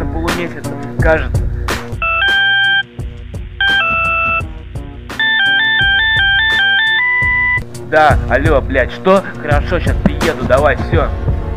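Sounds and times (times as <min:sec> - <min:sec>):
speech: 0:00.4 - 0:01.5, 0:07.9 - 0:11.3
phone ringing with a bright electronic melody over a dense backing: 0:02.0 - 0:02.9, 0:03.6 - 0:07.6.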